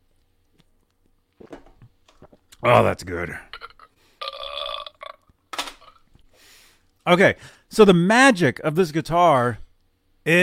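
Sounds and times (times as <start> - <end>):
speech: 2.6 - 3.5, 7.1 - 9.6, 10.3 - 10.4
loud burp: 3.5 - 6.0
breathy exhale: 6.3 - 6.8.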